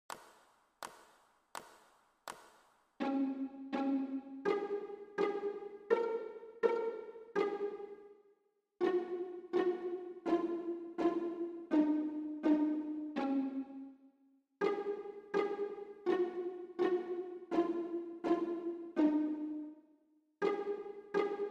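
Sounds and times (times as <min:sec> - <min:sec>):
violin and viola pizzicato: 0:03.0 - 0:08.2, 0:08.8 - 0:14.0, 0:14.6 - 0:19.8, 0:20.4 - 0:21.4.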